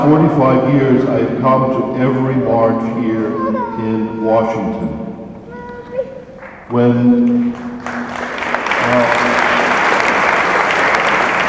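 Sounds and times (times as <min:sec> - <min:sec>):
speech: 0:00.0 - 0:05.1, 0:06.7 - 0:08.0
large crowd applauding at a pro-life march in Washington: 0:06.4 - 0:11.4.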